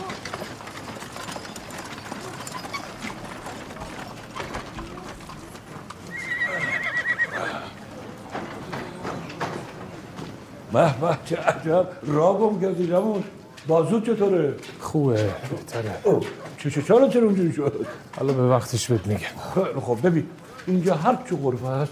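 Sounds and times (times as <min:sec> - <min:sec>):
clip-clopping horse hooves: 0:00.0 - 0:21.8
horse neighing at a caravanserai: 0:06.0 - 0:07.9
speech: 0:10.8 - 0:21.8.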